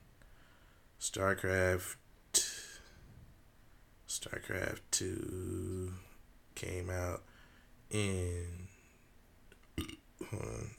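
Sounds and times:
speech: 1.0 - 2.0, 4.2 - 7.3, 7.9 - 8.8, 10.3 - 10.7
person burping: 9.7 - 10.7.

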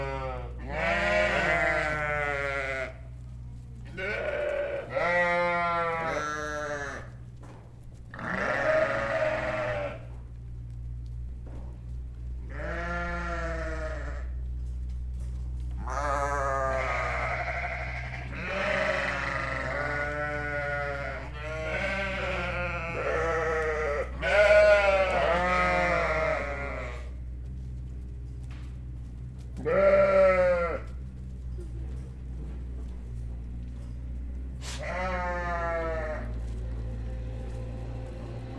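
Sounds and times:
sheep: 0.0 - 38.5.

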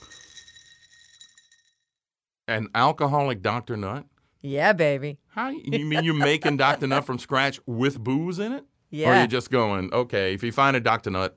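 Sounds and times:
glasses clinking in a toast: 0.0 - 1.7, 5.8 - 7.0
speech: 2.5 - 11.3
laughter: 5.7 - 7.5.

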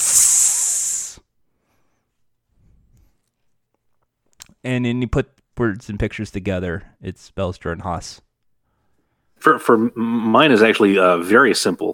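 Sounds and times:
person imitating a snake's hiss: 0.0 - 1.3
speech: 4.6 - 8.3, 9.4 - 11.9.

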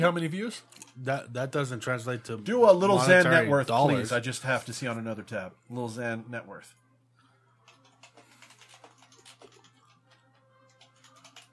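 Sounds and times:
speech: 0.0 - 6.8
typing on a mechanical keyboard: 7.6 - 11.5.

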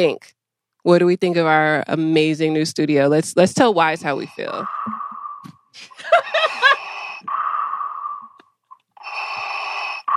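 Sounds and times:
speech: 0.0 - 5.0
person imitating deep mechanical breathing: 4.2 - 5.7, 6.5 - 10.1
person chuckling: 5.8 - 7.0.

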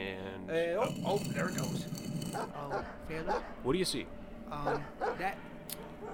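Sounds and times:
speech: 0.1 - 6.1
dog barking: 2.4 - 3.7, 4.6 - 5.3, 5.9 - 6.1.

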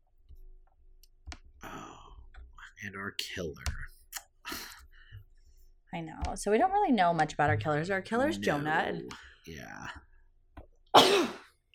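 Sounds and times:
speech: 2.8 - 3.8, 5.9 - 10.0
person sneezing from allergies: 11.0 - 11.5.

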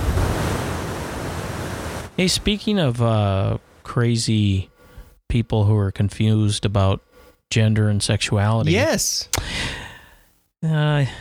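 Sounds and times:
ocean surf: 0.0 - 2.4
speech: 2.2 - 4.7, 5.3 - 9.8, 10.6 - 11.1.

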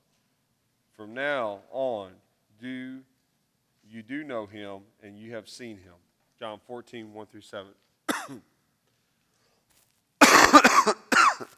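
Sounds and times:
speech: 1.0 - 3.1, 3.9 - 8.5
person coughing harsh hacks: 8.1 - 8.5, 10.2 - 11.5.

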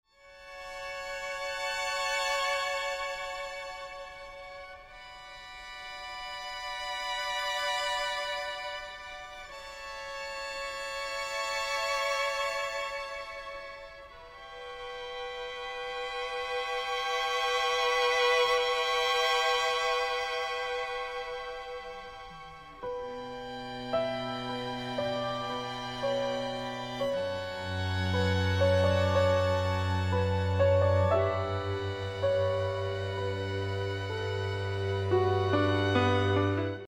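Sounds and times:
piano: 0.1 - 36.8
string quartet: 0.1 - 36.8
oboe: 0.2 - 36.8.

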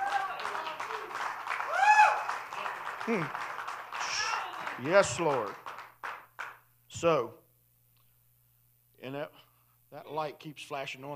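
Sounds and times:
congregation clapping hands: 0.0 - 6.7
speech: 3.1 - 3.4, 4.8 - 5.6, 7.0 - 7.4, 9.0 - 11.1.

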